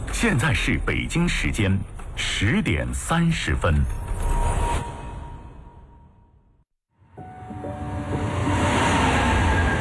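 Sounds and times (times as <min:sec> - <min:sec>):
speech: 0:00.2 - 0:04.1
subway train roaring past: 0:07.2 - 0:09.7.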